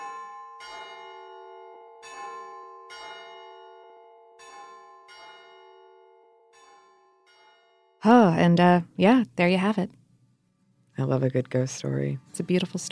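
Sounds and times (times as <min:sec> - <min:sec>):
church bell ringing: 0:00.0 - 0:08.0
speech: 0:08.0 - 0:10.0, 0:11.0 - 0:12.8.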